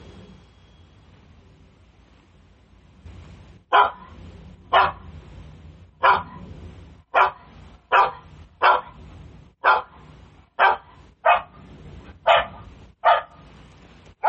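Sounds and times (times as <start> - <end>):
guard dog barking played through a smart speaker: 3.7 - 5.1, 6.0 - 6.5, 7.1 - 9.0, 9.6 - 10.0, 10.6 - 11.6, 12.2 - 13.4.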